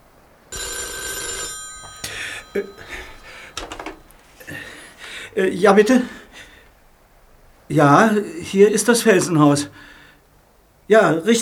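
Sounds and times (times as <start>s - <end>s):
faint indistinct movement: 0.4s - 9.9s
telephone bell ringing: 0.5s - 4.8s
telephone handset rattling and clunking as it is picked up: 0.6s - 4.4s
speech: 2.6s - 2.8s, 5.4s - 6.2s, 7.7s - 9.8s, 10.9s - 11.4s.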